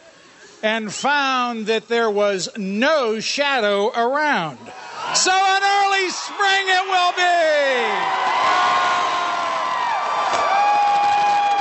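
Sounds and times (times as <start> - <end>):
speech: 0.6 - 8.6
large outdoor crowd cheering and whooping at Gobbler's Knob annual event: 4.7 - 11.5
overlapping shouts and high yells from crowd: 4.8 - 11.5.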